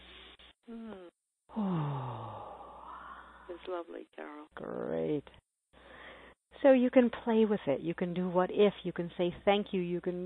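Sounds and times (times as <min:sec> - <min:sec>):
long voiced sigh with downward sliding pitch: 0:00.7 - 0:03.4
big deep breath during a guided affirmation exercise: 0:01.5 - 0:03.6, 0:05.8 - 0:06.4
speech: 0:03.6 - 0:05.4, 0:06.6 - 0:10.2.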